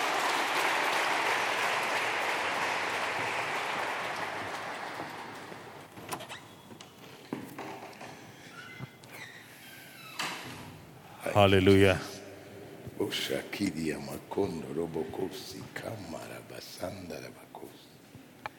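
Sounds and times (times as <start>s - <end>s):
audience applauding: 0.0s - 5.9s
room noise: 0.0s - 16.4s
speech: 11.4s - 12.1s, 13.1s - 17.8s.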